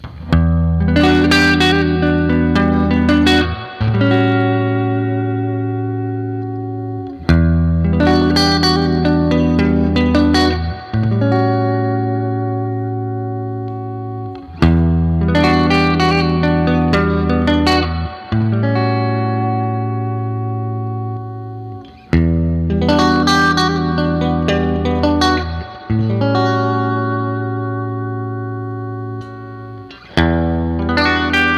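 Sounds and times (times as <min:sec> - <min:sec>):
electric guitar played through all pickup positions: 0:00.0 - 0:31.5.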